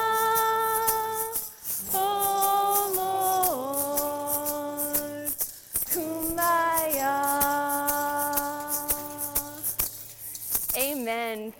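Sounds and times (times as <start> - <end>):
keys jingled as makeshift percussion by a church audience: 0.0 - 11.5.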